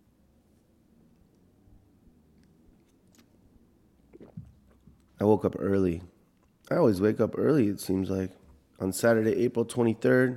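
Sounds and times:
brief slurp from a cup: 4.0s - 5.0s
sipping coffee from a cup: 4.0s - 5.1s
soft mouth and swallowing noises: 4.0s - 5.2s
speech: 5.2s - 6.1s, 6.7s - 10.3s.

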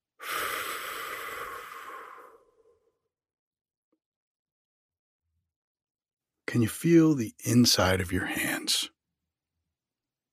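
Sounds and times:
deep slow breath during a guided relaxation exercise: 0.0s - 3.0s
speech: 6.5s - 9.0s.

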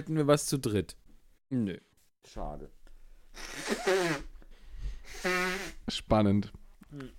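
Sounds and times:
speech: 0.0s - 2.8s, 3.4s - 4.3s, 5.1s - 7.1s
faint sniff: 3.3s - 5.8s
honking nose blows into a tissue: 3.3s - 5.9s.

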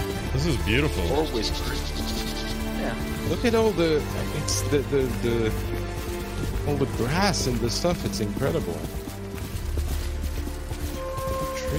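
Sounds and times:
speech: 0.4s - 2.1s, 2.8s - 6.0s, 6.6s - 9.0s
video game horse galloping through puddles: 0.5s - 11.7s.

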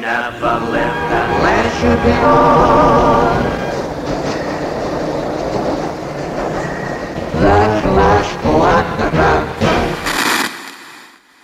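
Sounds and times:
speech: 0.0s - 3.5s
Glasgow subway train running: 0.0s - 10.1s
subway train wheels rattling and clattering: 0.8s - 9.0s.

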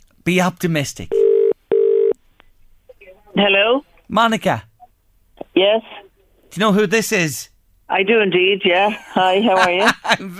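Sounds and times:
speech: 0.2s - 1.2s, 3.4s - 4.7s, 5.6s - 10.3s
ringback tone on an outgoing phone call: 1.1s - 2.2s
laughter: 8.9s - 10.3s.

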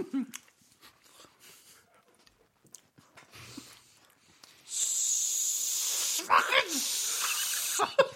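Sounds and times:
speech: 0.0s - 0.5s
person imitating a snake hiss: 4.6s - 8.0s.

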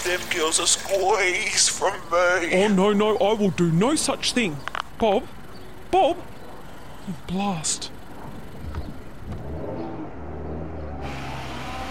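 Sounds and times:
road noise: 0.0s - 11.8s
speech: 0.1s - 6.3s, 7.1s - 8.0s
car driving away: 8.8s - 11.8s.

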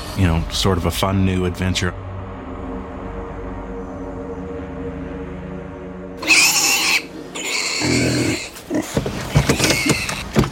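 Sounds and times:
speech: 0.2s - 2.1s
pigs squealing on a farm: 6.2s - 10.4s.

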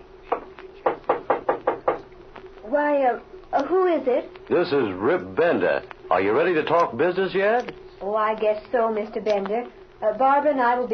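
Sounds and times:
faint steady hum: 0.0s - 10.9s
knocking on a door: 0.3s - 2.0s
speech: 2.7s - 10.9s.

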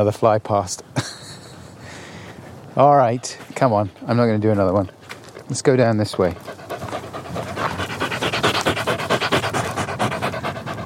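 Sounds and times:
speech: 0.0s - 1.2s, 2.8s - 6.6s
exhausted dog panting heavily: 6.1s - 10.8s.

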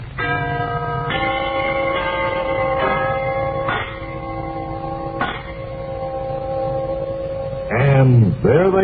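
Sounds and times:
brass door chimes ringing: 0.1s - 7.8s.

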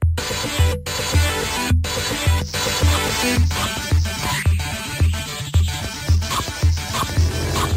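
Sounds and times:
upbeat synthesized arcade video game music: 0.2s - 7.7s
skateboarding arcade game sound effects: 6.9s - 7.7s.

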